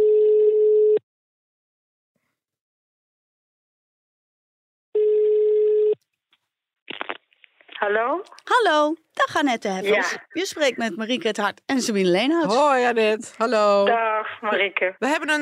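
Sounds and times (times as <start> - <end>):
ringback tone of an outgoing phone call: 0.0 - 1.0, 5.0 - 6.0
speech: 7.8 - 15.4.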